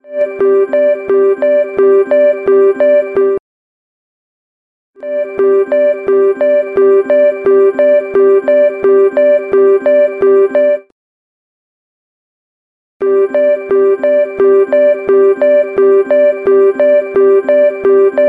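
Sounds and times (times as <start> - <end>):
alarm ringtone: 0.0 - 3.4, 5.0 - 10.9, 13.0 - 18.2.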